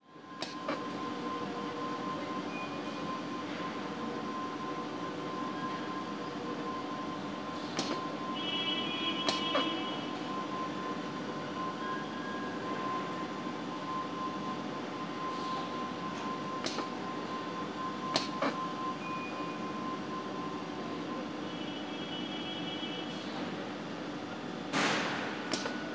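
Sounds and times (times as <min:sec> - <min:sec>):
tyre factory floor ambience: 0:00.0 - 0:25.9.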